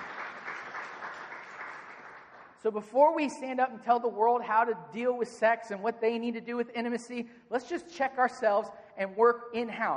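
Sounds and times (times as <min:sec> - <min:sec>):
audience applause during a sermon: 0:00.0 - 0:02.5
speech: 0:02.6 - 0:09.9.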